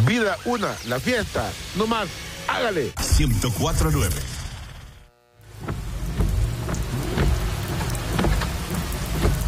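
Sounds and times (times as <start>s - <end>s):
speech: 0.1s - 4.3s
rain pouring: 5.5s - 9.4s
sharp drips and splashes: 5.7s - 9.4s.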